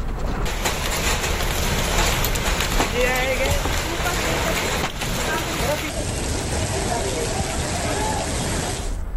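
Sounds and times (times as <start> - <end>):
heavy rain and hail pounding down: 0.2 - 9.0
faint voices murmuring: 2.8 - 9.0.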